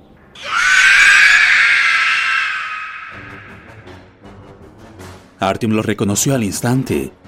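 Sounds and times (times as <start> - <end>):
monstrous flying creature shrieking: 0.4 - 3.9
speech: 5.4 - 7.2.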